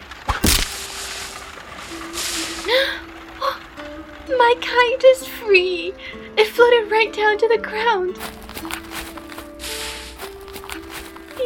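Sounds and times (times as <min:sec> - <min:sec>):
arrow shot from a bow at a high tree branch: 0:00.2 - 0:01.4
speech: 0:02.7 - 0:03.0, 0:04.3 - 0:08.4.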